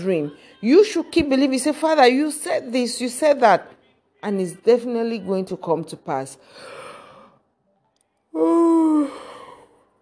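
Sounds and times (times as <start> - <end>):
speech: 0.0 - 6.8, 8.4 - 9.3
person yawning: 8.4 - 9.8.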